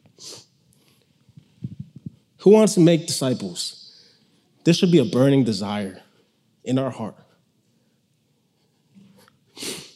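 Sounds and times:
speech: 2.4 - 3.8, 4.7 - 7.2
person with a cold sniffling: 9.1 - 9.9.

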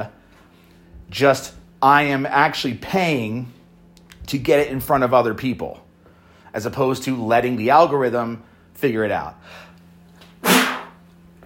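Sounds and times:
speech: 1.1 - 3.6, 4.2 - 5.8, 6.6 - 9.7
person sneezing into a microphone: 10.4 - 11.0.

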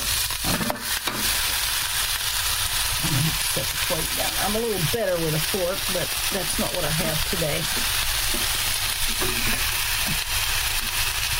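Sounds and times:
pork chop sizzling in a pan: 0.0 - 11.3
speech: 3.6 - 8.6, 9.2 - 10.4.

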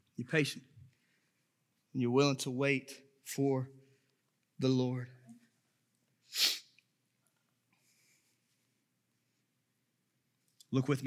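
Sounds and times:
speech: 0.2 - 0.7, 2.0 - 3.8, 4.6 - 5.2, 10.7 - 11.0
person sneezing: 6.3 - 6.7.

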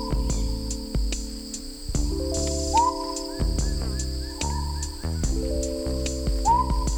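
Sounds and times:
dense droning chorus of night creatures: 0.0 - 6.9
male smoky jungle frog high-pitched whistle-like call: 2.7 - 5.3.

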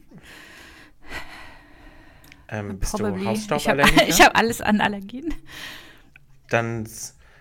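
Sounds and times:
person panting with heavy snorting breaths: 0.1 - 2.4
speech: 2.5 - 5.8, 6.5 - 7.2
laughter: 3.2 - 4.7.

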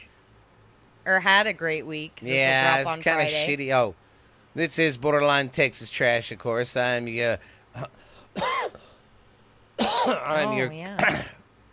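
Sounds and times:
speech: 1.0 - 8.8, 10.0 - 11.4
person coughing roughly: 7.8 - 8.9, 9.8 - 10.3, 11.0 - 11.4
throaty gravelly throat clearing: 11.0 - 11.4.

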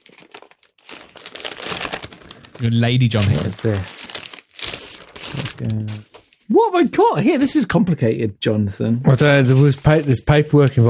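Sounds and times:
wrapping paper crinkling and tearing as present is unwrapped: 0.0 - 6.5, 9.2 - 10.8
speech: 2.6 - 4.2, 5.4 - 10.8.

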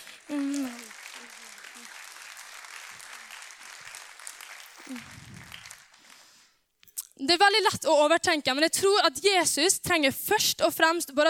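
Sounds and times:
audience applause: 0.0 - 6.5
speech: 4.9 - 5.2, 7.2 - 11.2.

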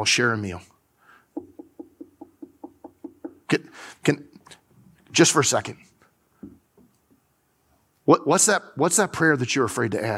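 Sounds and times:
speech: 0.0 - 0.7, 3.5 - 4.3, 5.2 - 5.9, 8.1 - 10.1
knocking on a door: 1.4 - 3.5.

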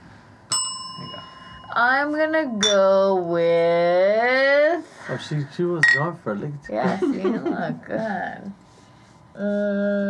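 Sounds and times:
bright bell struck: 0.5 - 2.0
speech: 1.8 - 8.6, 9.4 - 10.0.

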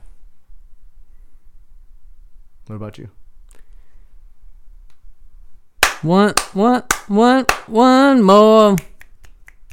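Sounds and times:
speech: 2.7 - 3.2, 6.0 - 8.9
person singing or humming a wavering tune: 6.1 - 9.0
crisp finger snaps in a steady beat: 8.8 - 9.7.

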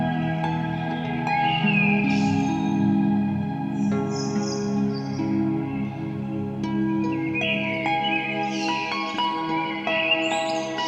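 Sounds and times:
blackbirds and seagulls calling and whistling: 0.0 - 10.8
harp notes: 0.0 - 10.8.

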